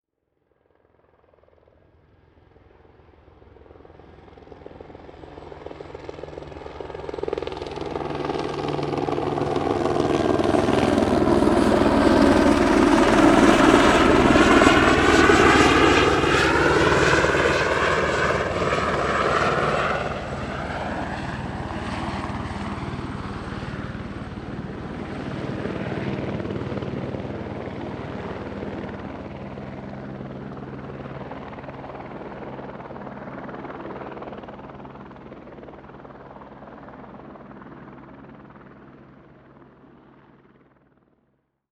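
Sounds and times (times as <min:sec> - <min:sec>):
helicopter: 0:00.2 - 0:41.4
plane driving by: 0:07.8 - 0:29.6.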